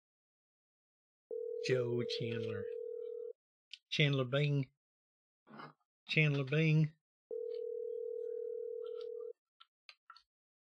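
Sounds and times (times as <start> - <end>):
phone line ringing tone: 1.3 - 3.3, 7.3 - 9.3
speech: 1.6 - 2.8, 4.0 - 4.8, 5.5 - 7.0.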